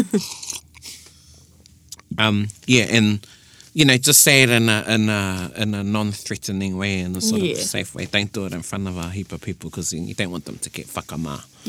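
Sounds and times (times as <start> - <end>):
speech: 0.0 - 0.6, 2.2 - 11.6
faint mouth sounds: 0.0 - 1.0
slurping sip of tea from a cup: 0.2 - 1.1.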